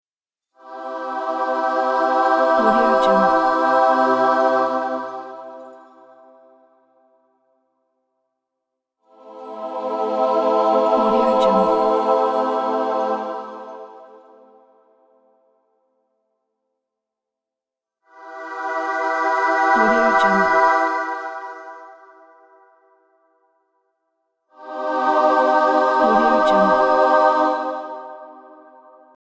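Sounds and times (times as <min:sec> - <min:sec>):
angelic reveal choir: 0:00.6 - 0:07.0, 0:09.1 - 0:15.4, 0:18.1 - 0:23.2, 0:24.5 - 0:29.2.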